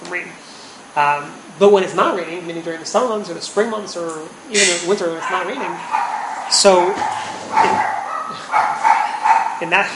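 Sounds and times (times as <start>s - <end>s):
speech: 0.1s - 8.7s, 9.6s - 9.9s
two guard dogs barking with short, sharp yipping barks: 4.6s - 9.9s.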